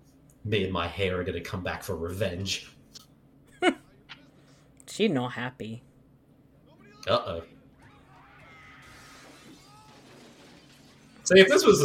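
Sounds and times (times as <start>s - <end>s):
speech: 0.4s - 2.8s, 5.0s - 5.9s, 7.0s - 7.6s, 11.3s - 11.8s
glass window shattering when hit with a chair: 8.9s - 11.3s.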